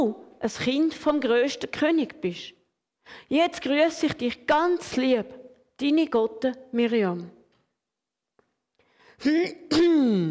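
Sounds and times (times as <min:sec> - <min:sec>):
speech: 0:00.0 - 0:07.4, 0:09.2 - 0:10.2
man clearing his throat: 0:09.4 - 0:10.2.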